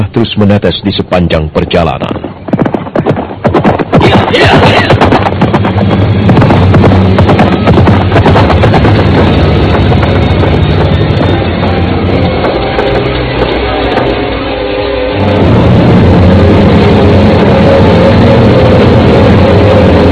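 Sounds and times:
speech: 0.0s - 2.3s, 4.0s - 5.3s
horse hooves clip-clopping on hard ground while riding: 1.8s - 14.4s
low rumble: 2.1s - 20.0s.

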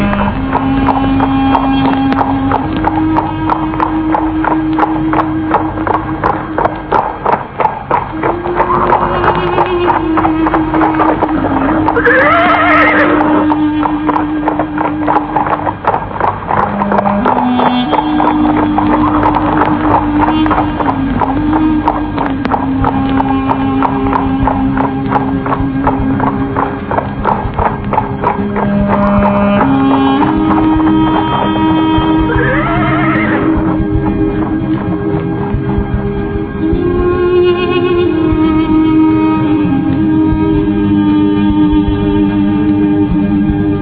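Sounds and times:
horse hooves clip-clopping while walking slowly: 0.0s - 43.8s
horse neighing or whinnying: 8.2s - 14.3s, 28.4s - 33.9s.

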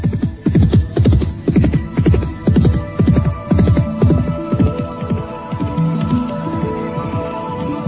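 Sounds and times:
horse galloping hoofbeats: 0.0s - 7.7s.

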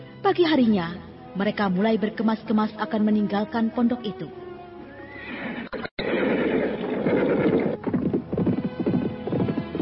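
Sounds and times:
speech: 0.3s - 4.4s
two ridden horses whinnying loudly: 4.9s - 9.4s
hooves clattering in a galloping rhythm along a tree-lined footpath: 4.9s - 9.7s.

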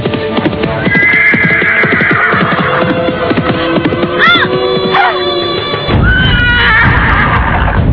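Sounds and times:
horse hooves clattering: 0.0s - 7.8s
horse neighing loudly: 0.8s - 2.9s, 6.0s - 7.8s.

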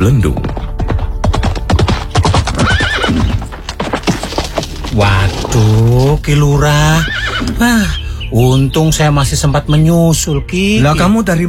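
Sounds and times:
speech: 0.0s - 0.6s, 6.2s - 11.4s
horse hooves clip-clopping on a hard road: 0.3s - 6.2s
horse carrying a rider neighing: 2.3s - 3.6s, 6.8s - 8.0s.

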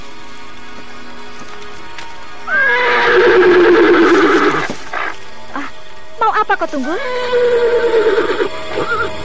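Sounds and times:
horse neighing: 2.5s - 5.2s, 6.9s - 9.2s
speech: 6.7s - 8.3s.

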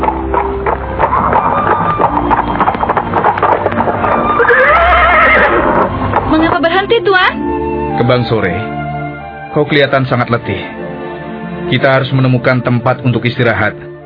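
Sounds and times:
horse hooves clip-clopping in a village: 0.0s - 7.0s
horse neighing loudly as reins are pulled: 1.0s - 6.2s
speech: 8.1s - 8.7s, 9.6s - 10.8s, 11.7s - 13.9s.

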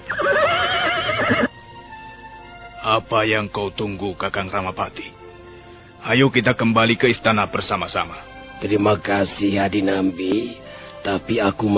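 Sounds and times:
horse whinnying: 0.0s - 1.5s
speech: 2.9s - 5.2s, 6.0s - 11.7s.

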